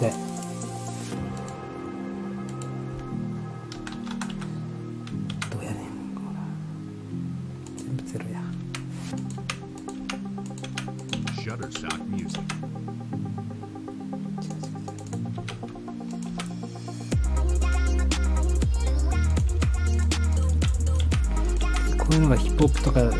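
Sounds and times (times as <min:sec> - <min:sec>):
speech: 0:00.0 - 0:00.3, 0:22.6 - 0:23.1
steady tonal music: 0:00.0 - 0:23.1
computer keyboard typing: 0:03.7 - 0:05.6, 0:08.6 - 0:12.6, 0:14.4 - 0:16.5, 0:20.3 - 0:23.1.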